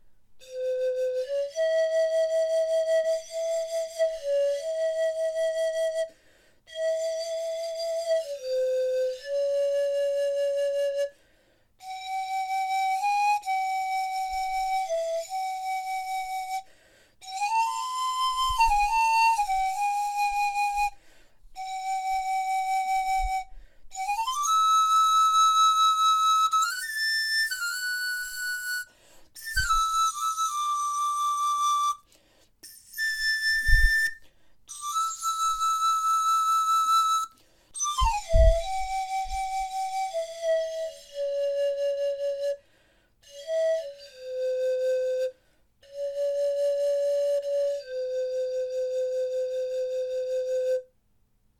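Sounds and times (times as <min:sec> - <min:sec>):
large indigenous pan flute: 0:00.4 - 0:11.2, 0:11.8 - 0:50.9.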